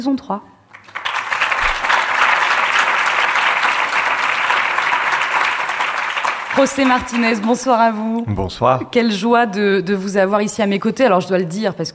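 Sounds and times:
speech: 0:00.0 - 0:00.5, 0:06.6 - 0:11.9
live audience applause: 0:00.7 - 0:07.8.

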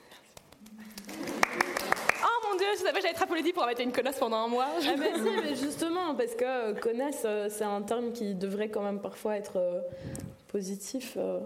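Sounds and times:
audience hand clapping: 0:00.3 - 0:02.8
speech: 0:02.6 - 0:11.4
voices talking and laughing: 0:04.6 - 0:07.0.

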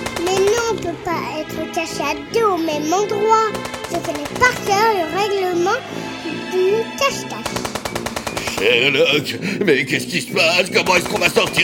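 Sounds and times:
rotary machine gun fire from a giant robot dog: 0:00.0 - 0:00.8, 0:03.5 - 0:04.8, 0:07.4 - 0:09.0, 0:10.8 - 0:11.6
speech: 0:00.8 - 0:07.6, 0:08.6 - 0:11.6.

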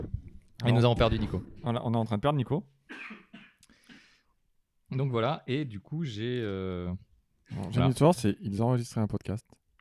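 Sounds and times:
speech: 0:00.6 - 0:03.2, 0:04.9 - 0:09.6
loud coughing: 0:02.9 - 0:04.2.

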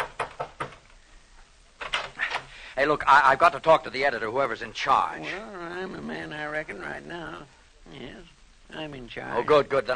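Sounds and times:
pounding on a copy room door at a newspaper office: 0:00.0 - 0:00.8
speech: 0:02.8 - 0:09.9.

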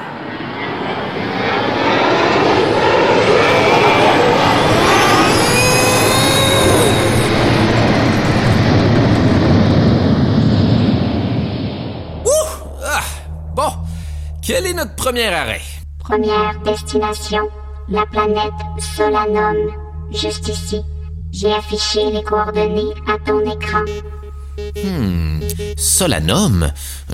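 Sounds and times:
spacecraft engine roar taking off: 0:00.0 - 0:14.5
brief vocal sounds: 0:12.3 - 0:14.5, 0:24.4 - 0:27.1
speech: 0:14.8 - 0:27.1.

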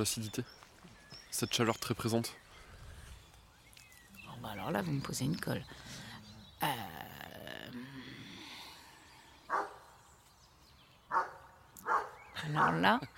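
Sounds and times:
speech: 0:00.0 - 0:00.7, 0:01.3 - 0:02.4, 0:04.4 - 0:06.0, 0:06.6 - 0:06.9, 0:12.5 - 0:13.1
dog barking: 0:09.5 - 0:09.8, 0:11.1 - 0:12.9.

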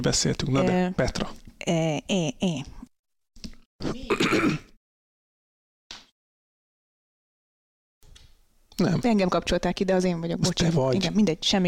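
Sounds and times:
speech: 0:00.0 - 0:02.8, 0:03.8 - 0:04.6, 0:08.8 - 0:11.6
rough cough: 0:03.8 - 0:04.8
throat clearing: 0:03.8 - 0:04.8.

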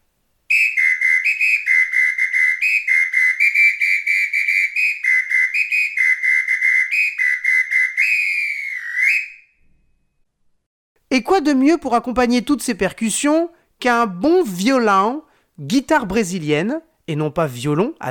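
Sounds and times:
shrill three-tone samba whistle blown by samba drum section leader: 0:00.5 - 0:09.9
speech: 0:11.2 - 0:18.1.

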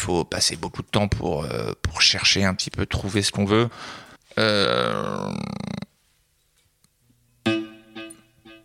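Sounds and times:
speech: 0:00.0 - 0:05.8
buzzy electric guitar notes through an external delay pedal: 0:07.4 - 0:08.6.

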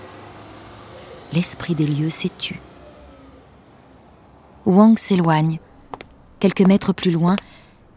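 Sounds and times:
night bus engine rumble: 0:00.0 - 0:07.9
speech: 0:01.3 - 0:02.7, 0:04.7 - 0:07.9.

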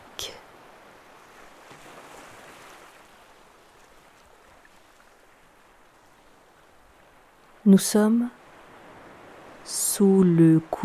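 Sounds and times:
muffled ocean waves: 0:00.0 - 0:10.8
speech: 0:00.2 - 0:00.4, 0:07.6 - 0:08.4, 0:10.0 - 0:10.8.

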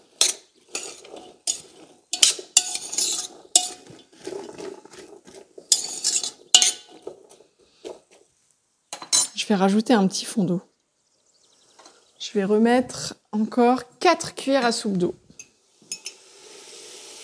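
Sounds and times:
utensil stirring partly cooked food in a pan: 0:00.0 - 0:08.2
speech: 0:09.5 - 0:10.7, 0:12.4 - 0:15.2.

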